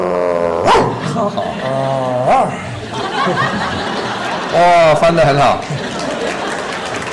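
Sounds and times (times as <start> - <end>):
human voice imitating high yelping dog barks: 0.0 - 2.8
laughter: 0.1 - 7.1
speech: 1.2 - 2.6, 3.3 - 3.9, 4.5 - 5.8.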